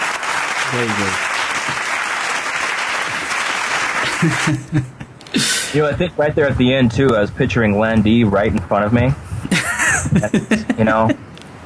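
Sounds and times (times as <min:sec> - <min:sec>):
group applauding: 0:00.0 - 0:04.9
speech: 0:00.7 - 0:01.9, 0:04.2 - 0:09.2, 0:10.1 - 0:11.3
laughter: 0:04.0 - 0:07.5, 0:09.4 - 0:11.2.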